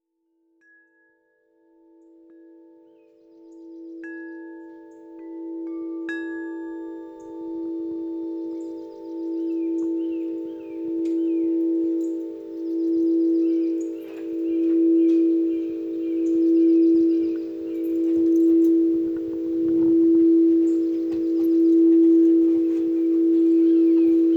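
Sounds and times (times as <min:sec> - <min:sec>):
deep forest ambient lounge music soundscape: 0:10.0 - 0:24.3.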